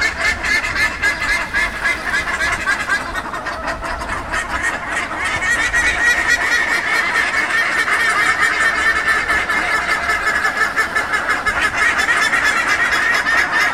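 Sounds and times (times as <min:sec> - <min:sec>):
buff-necked ibis chorus of honking calls in Frutillar, Chile: 0:00.0 - 0:13.7.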